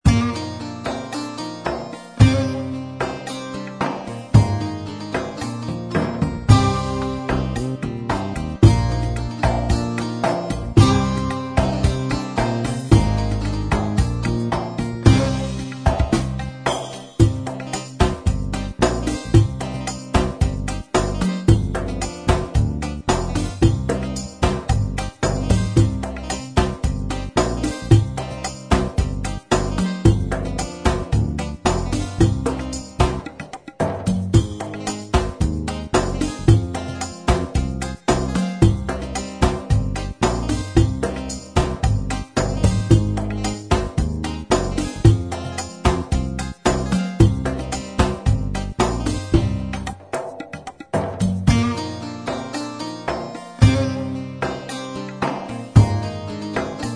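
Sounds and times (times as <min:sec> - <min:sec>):
agirlama style oriental music on Gem Genesys Pro: 0:00.0 - 0:56.9.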